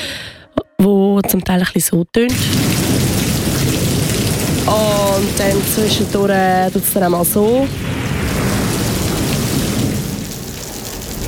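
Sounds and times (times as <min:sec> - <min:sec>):
speech: 0:01.2 - 0:03.0, 0:04.7 - 0:08.0
deep continuous rumble of thunder: 0:02.3 - 0:11.2
steady heavy rain pouring down: 0:02.3 - 0:11.2.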